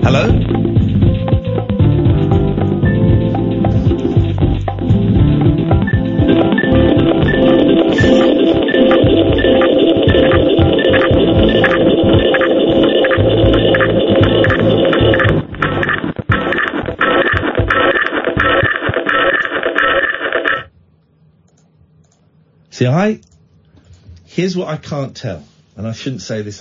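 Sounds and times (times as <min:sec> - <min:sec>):
broken phone line hum and buzz on a caller's line: 0:00.6 - 0:20.8
speech: 0:24.5 - 0:26.5.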